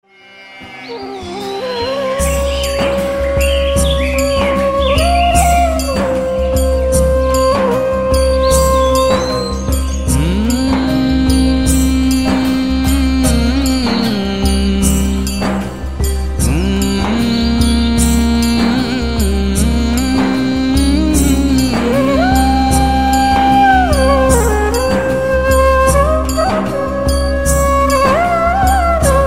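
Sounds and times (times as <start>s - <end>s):
flute playing a trending bhajan: 0.0s - 29.2s.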